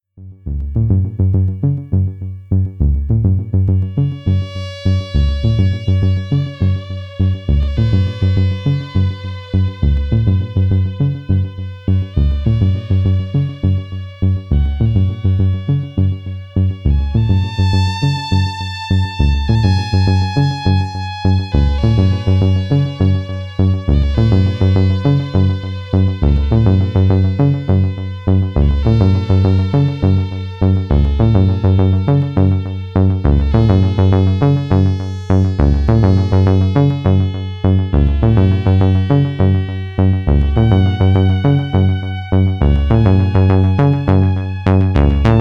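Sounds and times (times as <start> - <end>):
soft synth sequence: 0.3 - 45.3.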